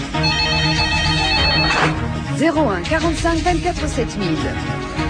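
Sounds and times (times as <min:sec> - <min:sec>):
telephone ringing with bright electronic tones: 0:00.1 - 0:02.1
speech: 0:02.4 - 0:05.0.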